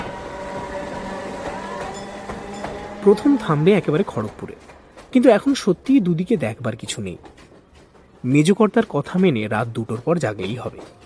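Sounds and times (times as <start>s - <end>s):
train gathering speed on rails after leaving a shunting yard: 0.0s - 11.0s
speech: 3.0s - 7.3s, 8.2s - 11.0s.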